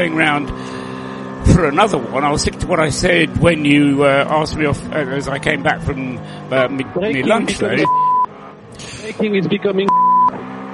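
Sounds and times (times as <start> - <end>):
speech: 0.0 - 0.8, 1.5 - 8.0, 9.1 - 10.0
high censor bleeps: 7.8 - 8.3, 9.9 - 10.4.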